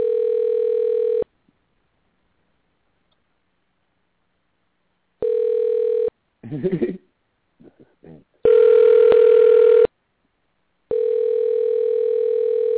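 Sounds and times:
phone ringback tone through a handset: 0:00.0 - 0:01.3, 0:05.2 - 0:06.1, 0:08.5 - 0:09.9, 0:10.9 - 0:12.7.

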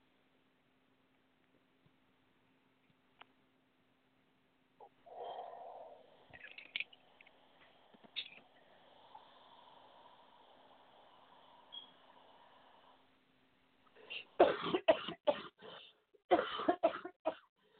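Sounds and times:
faint hum: 0:00.0 - 0:17.7
person coughing harshly: 0:14.1 - 0:15.5, 0:16.3 - 0:17.5.

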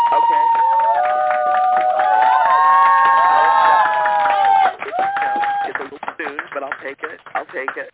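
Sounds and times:
large crowd cheering and shouting: 0:00.0 - 0:05.8
canned applause from a large crowd: 0:00.0 - 0:07.9.

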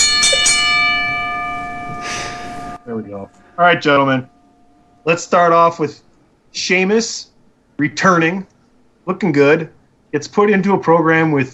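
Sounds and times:
bell ringing: 0:00.0 - 0:06.0
speech: 0:03.0 - 0:04.4, 0:05.0 - 0:11.5.

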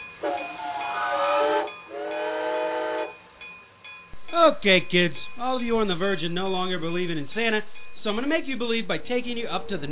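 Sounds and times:
steam train whistle: 0:00.0 - 0:03.2
speech: 0:04.5 - 0:09.8.

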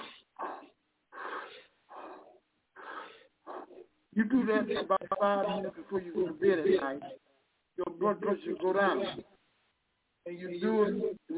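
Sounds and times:
deep breathing during a meditation exercise: 0:00.0 - 0:04.0
speech: 0:04.2 - 0:07.2, 0:08.0 - 0:09.3, 0:10.3 - 0:11.3.

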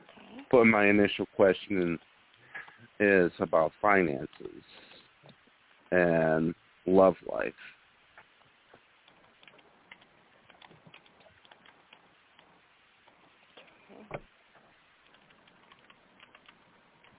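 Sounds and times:
speech: 0:00.5 - 0:02.1, 0:03.0 - 0:04.9, 0:05.9 - 0:07.8
keyboard typing: 0:09.0 - 0:12.5, 0:15.0 - 0:17.1.

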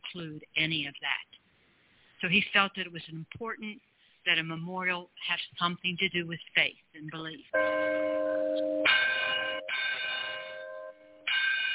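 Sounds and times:
speech: 0:00.2 - 0:01.2, 0:02.2 - 0:08.7
large chapel bell tolling: 0:07.6 - 0:11.7.

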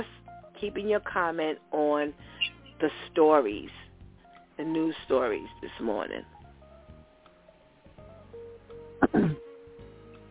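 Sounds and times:
speech: 0:00.0 - 0:03.8, 0:04.6 - 0:06.4, 0:09.0 - 0:09.4
person coughing: 0:09.0 - 0:09.4
rough gravelly throat clearing: 0:09.0 - 0:09.4.

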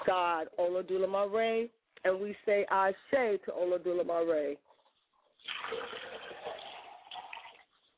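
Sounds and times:
speech: 0:00.1 - 0:04.6
water poured out as a libation offering: 0:05.2 - 0:07.9.

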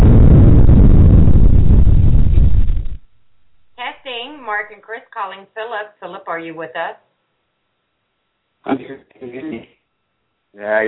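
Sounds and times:
bomb explosion sound effect: 0:00.0 - 0:03.8
speech: 0:04.8 - 0:07.1, 0:08.6 - 0:09.7, 0:10.6 - 0:10.8.

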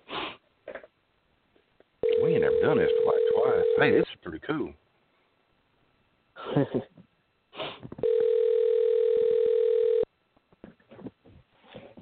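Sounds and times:
outgoing telephone call ringback tone over the line: 0:02.0 - 0:04.0, 0:08.0 - 0:10.1
speech: 0:02.5 - 0:04.8, 0:06.5 - 0:07.0.

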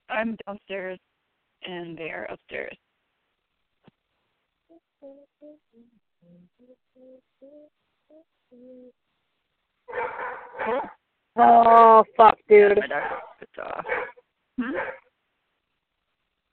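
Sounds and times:
speech: 0:00.2 - 0:02.8, 0:05.0 - 0:09.0, 0:09.9 - 0:15.0
dog barking harshly: 0:09.9 - 0:11.0, 0:12.9 - 0:15.1.

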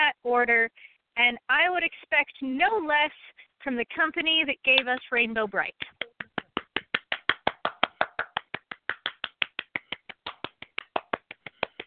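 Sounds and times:
speech: 0:00.3 - 0:06.0
single pair of hands clapping: 0:05.8 - 0:11.8.

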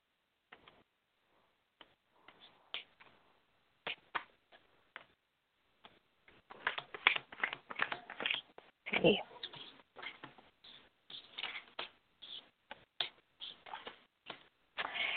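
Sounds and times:
deck of cards being shuffled: 0:05.8 - 0:15.1
speech: 0:09.0 - 0:09.3.

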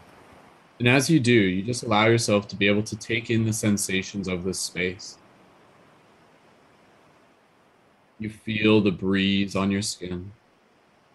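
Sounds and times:
ocean surf waves rolling in: 0:00.0 - 0:08.2
speech: 0:00.8 - 0:05.2, 0:08.2 - 0:10.4.

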